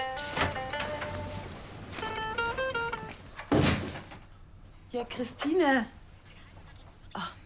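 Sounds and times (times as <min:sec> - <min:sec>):
door opening and closing: 0:00.1 - 0:04.3
speech: 0:05.0 - 0:06.0.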